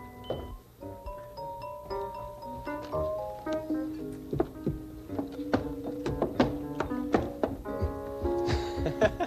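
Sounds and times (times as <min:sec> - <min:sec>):
bouncy playful melody: 0:00.0 - 0:09.2
heavy thumping footsteps of costumed horse climbing steps: 0:01.9 - 0:09.2.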